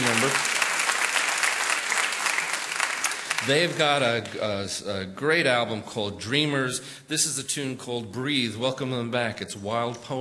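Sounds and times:
audience applause at a live music radio show: 0.0 - 4.0
speech: 3.4 - 10.1.

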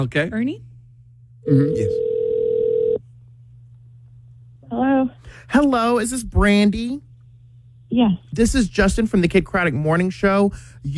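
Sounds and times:
speech: 0.0 - 0.7, 1.4 - 2.1, 4.7 - 7.1, 7.9 - 10.9
phone line hum: 1.2 - 4.2
outgoing call ringback tone over the phone line: 1.5 - 3.0.

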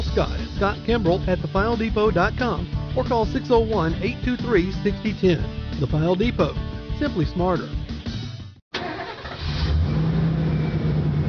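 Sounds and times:
speech: 0.2 - 7.8
truck engine starting and revving: 8.7 - 11.2.

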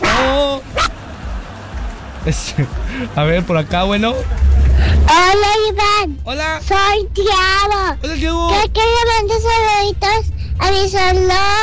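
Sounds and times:
small dog barking: 0.0 - 1.9
laughter: 0.0 - 7.1
low rumble: 0.0 - 11.6
speech: 2.2 - 11.6.

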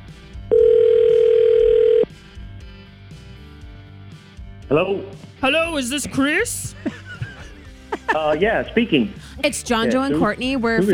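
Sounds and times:
quiet phone line noise: 0.5 - 2.1
telephone ringback tone over a phone line: 0.5 - 2.1
speech: 4.7 - 7.0, 8.1 - 10.9
laughter: 6.7 - 8.8, 10.0 - 10.9.

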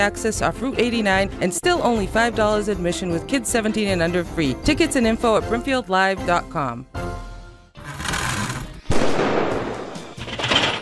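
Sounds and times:
speech: 0.0 - 7.2
harsh buzzing rattle: 7.8 - 8.8
rough mechanical noise: 7.8 - 8.9
loud sharp bang: 8.9 - 10.2.

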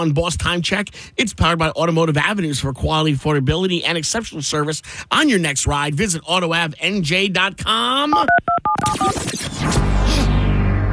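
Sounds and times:
speech: 0.0 - 9.8
telephone touch-tone dialing beeps: 8.1 - 9.3
loud sustained rush of noisy whooshing sound: 9.4 - 10.9.

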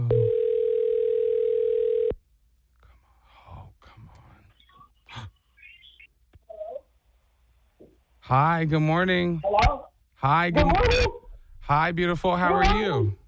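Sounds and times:
electronic phone ringing tone of an outgoing call: 0.1 - 2.1
soft breathy noises: 2.8 - 6.9
speech: 8.3 - 13.2.

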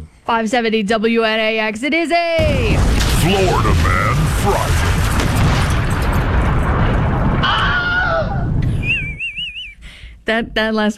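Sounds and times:
speech: 0.3 - 4.7, 10.3 - 10.9
loud sustained explosion rumbling: 2.4 - 9.4
descending whistles: 7.4 - 9.9
warbling whistle: 8.6 - 9.8.

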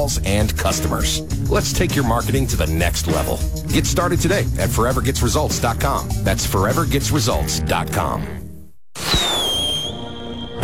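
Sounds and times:
speech: 0.0 - 8.4
firework rocket whistling during a backyard fireworks show: 9.0 - 10.6.

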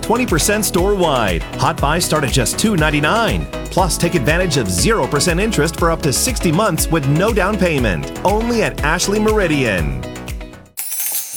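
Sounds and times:
speech: 0.1 - 10.1
coins dropping and clattering: 10.8 - 11.3.

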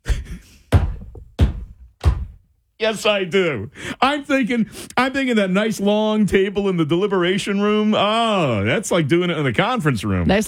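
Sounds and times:
wooden gavel being banged: 0.7 - 2.4
speech: 2.8 - 10.4.

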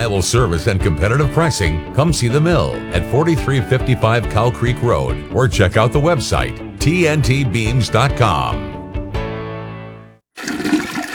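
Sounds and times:
speech: 0.1 - 8.7
toilet flushing improperly: 10.3 - 11.1.

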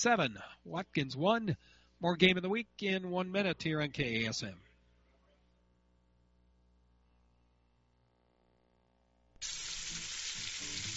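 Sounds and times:
speech: 0.0 - 4.7
pork sizzling in a hot pan: 9.4 - 10.9.

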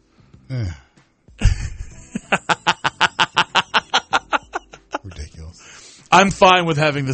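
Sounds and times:
speech: 0.5 - 0.8, 6.2 - 7.1
retro video game dog laughing: 1.4 - 5.2.

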